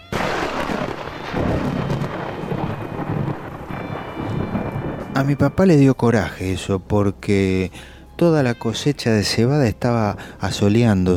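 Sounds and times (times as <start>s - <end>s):
heavy downpour of rain: 0.0s - 5.8s
deep thunder rumbling: 0.1s - 6.7s
speech: 5.2s - 11.1s.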